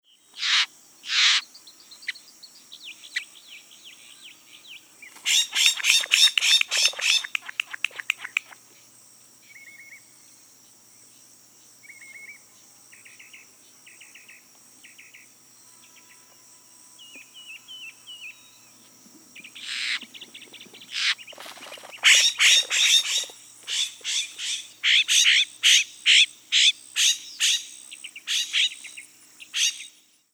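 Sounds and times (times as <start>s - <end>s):
Florida Scrub Jay hiss calls: 0.3s - 2.2s, 4.6s - 10.0s, 17.2s - 30.0s
Florida Scrub Jay click calls: 0.4s - 1.4s, 5.1s - 8.8s, 19.4s - 27.6s.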